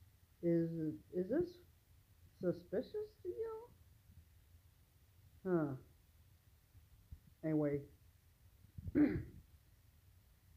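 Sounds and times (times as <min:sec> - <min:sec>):
speech: 0:00.4 - 0:01.7, 0:02.4 - 0:03.7, 0:05.4 - 0:05.9, 0:07.4 - 0:08.0, 0:08.8 - 0:09.4
gravelly throat clearing: 0:08.9 - 0:09.4.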